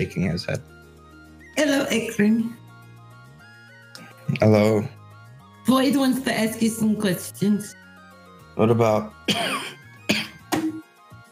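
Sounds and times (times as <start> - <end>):
speech: 0.0 - 0.8, 1.6 - 2.6, 4.3 - 5.0, 5.7 - 7.8, 8.6 - 9.8
sharp raspy coughing: 9.3 - 10.8
throat clearing: 9.3 - 10.8.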